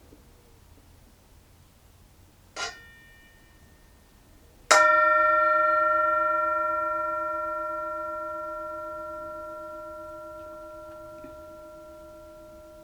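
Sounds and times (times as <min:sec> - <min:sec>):
mindfulness bell ringing: 0:04.7 - 0:12.8.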